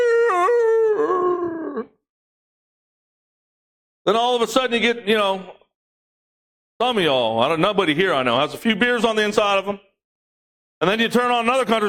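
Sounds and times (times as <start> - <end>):
person imitating a howl: 0.0 - 2.0
speech: 4.0 - 5.6, 6.8 - 9.9, 10.8 - 11.8.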